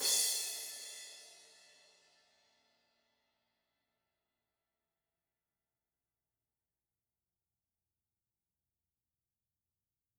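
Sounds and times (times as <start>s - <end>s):
crash cymbal: 0.0s - 2.4s.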